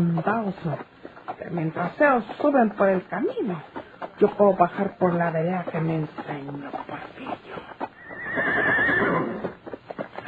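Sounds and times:
speech: 0.0s - 7.7s
horse hooves clopping: 0.0s - 10.2s
horse whinnying: 7.9s - 9.6s.

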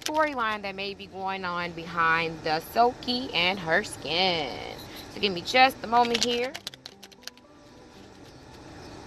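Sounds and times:
steady low hum: 0.0s - 9.0s
speech: 0.1s - 6.7s
deck of tarot cards being shuffled: 6.0s - 8.7s.

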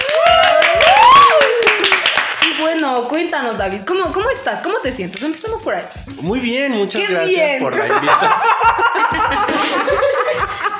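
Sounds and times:
person whooping or cheering in a rising and falling tone: 0.0s - 2.0s
dense hand clapping applause: 0.0s - 2.8s, 5.0s - 5.6s, 10.5s - 10.7s
speech: 3.2s - 10.6s
laughter: 7.7s - 10.7s.

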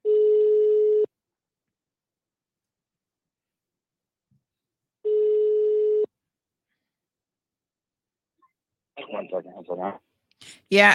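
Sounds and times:
buzzy ringback tones of an outgoing phone call: 0.0s - 1.1s, 5.0s - 6.1s
speech: 9.1s - 10.1s, 10.7s - 10.9s.

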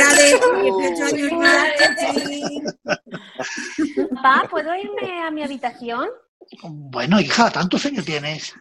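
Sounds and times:
overlapping voices at a party: 0.0s - 5.7s
glasses clinking in a toast at a party: 1.4s - 2.8s
light laughter at a party: 1.9s - 5.3s
speech: 4.2s - 8.5s.

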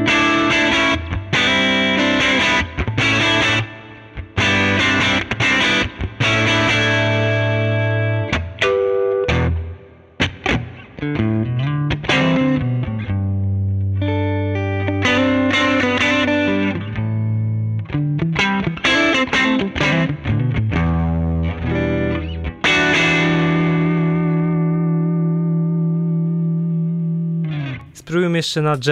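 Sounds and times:
overdriven electric guitar through an amplifier playing a bluesy phrase: 0.0s - 28.0s
speech: 28.4s - 28.8s.

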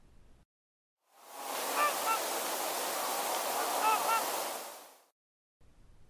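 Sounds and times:
steady rushing wash of water or wind: 1.1s - 5.1s
trumpeter swans giving deep-throated barking calls: 1.4s - 4.9s.

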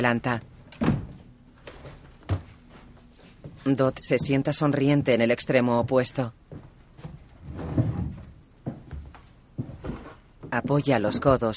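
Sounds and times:
speech: 0.0s - 0.5s, 3.6s - 6.7s, 10.6s - 11.5s
door being closed by a man: 0.8s - 1.2s.

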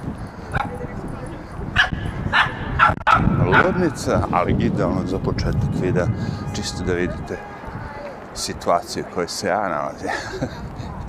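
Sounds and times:
dog barking in high-pitched yips: 1.8s - 3.8s
speech: 3.6s - 7.6s, 8.4s - 10.8s
laughter: 9.8s - 11.0s.

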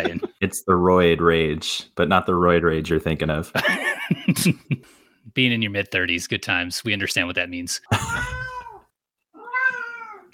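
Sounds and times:
laughter: 0.0s - 0.4s, 3.6s - 4.8s
speech: 0.0s - 8.4s
cat meowing: 8.0s - 10.3s.

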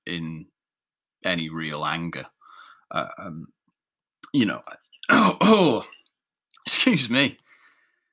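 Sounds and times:
speech: 0.1s - 0.5s, 1.2s - 3.6s, 4.3s - 6.0s, 6.6s - 7.4s
person clearing throat: 5.1s - 5.9s
person coughing on Thai curry: 5.1s - 5.9s.

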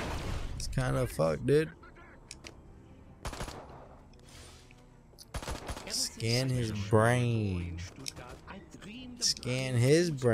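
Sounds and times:
speech: 0.8s - 1.8s, 6.2s - 10.3s
large gun firing in a video game: 3.2s - 4.0s, 5.3s - 6.2s.

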